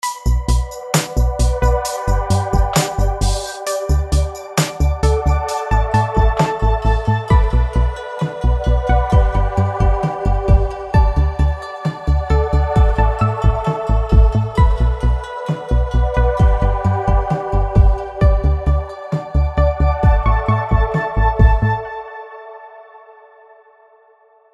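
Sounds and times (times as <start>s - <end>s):
generative chillout music: 0.0s - 24.5s.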